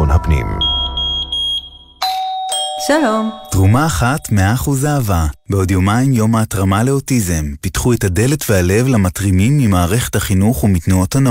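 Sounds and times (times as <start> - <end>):
smoke detector alarm beeping: 0.5 - 4.6
speech: 2.9 - 11.2.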